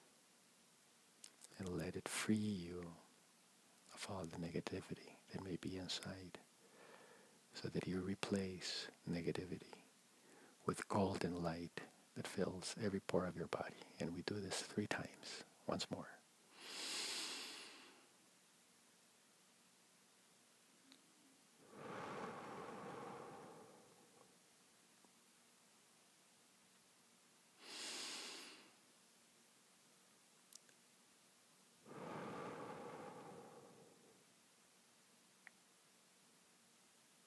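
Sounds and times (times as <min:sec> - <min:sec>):
speech: 0:01.6 - 0:03.0, 0:04.0 - 0:06.4, 0:07.6 - 0:09.8, 0:10.6 - 0:16.8
slow deep meditative breaths in and out: 0:06.6 - 0:07.5, 0:10.2 - 0:10.6, 0:16.5 - 0:18.1, 0:21.6 - 0:24.4, 0:27.6 - 0:28.8, 0:31.8 - 0:34.3.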